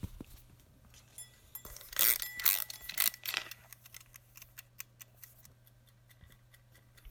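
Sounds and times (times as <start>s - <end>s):
mechanical timer wound with ratcheting clicks: 1.5s - 7.0s.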